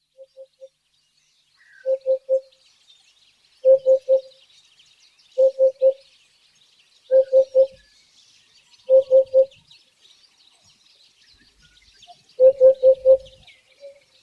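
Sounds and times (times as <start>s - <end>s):
hoopoe calling: 1.7s - 2.5s, 3.6s - 4.3s, 5.4s - 6.0s, 7.1s - 7.8s, 8.8s - 9.6s, 12.1s - 14.0s.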